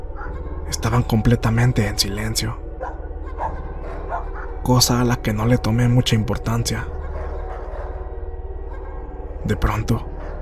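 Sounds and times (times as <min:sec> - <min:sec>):
several dogs barking desperately: 0:00.0 - 0:00.6, 0:02.7 - 0:05.1, 0:06.6 - 0:10.3
speech: 0:00.8 - 0:02.6, 0:04.6 - 0:07.0, 0:09.4 - 0:10.1.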